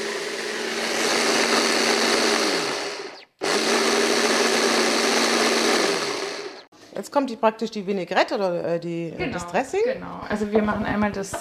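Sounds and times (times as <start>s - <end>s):
blender pureeing strawberries for a salad dressing: 0.0s - 6.7s
speech: 7.1s - 11.4s.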